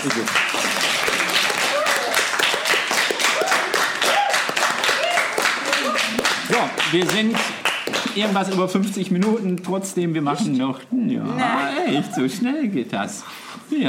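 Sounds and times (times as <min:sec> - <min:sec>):
speech: 0:00.0 - 0:00.6, 0:06.5 - 0:13.8
audience clapping at the end of the event: 0:00.0 - 0:09.4
laughter: 0:11.4 - 0:12.6.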